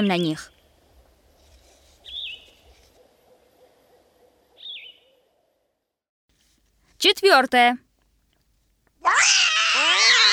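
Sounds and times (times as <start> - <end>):
speech: 0.0 - 0.6, 7.0 - 7.9, 9.0 - 9.4
bird whistle calls in a forest: 4.6 - 5.1.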